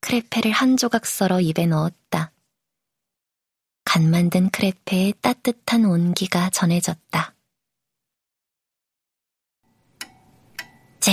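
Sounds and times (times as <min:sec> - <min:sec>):
speech: 0:00.1 - 0:02.4, 0:03.9 - 0:07.3
pendulum clock ticking: 0:09.9 - 0:11.1.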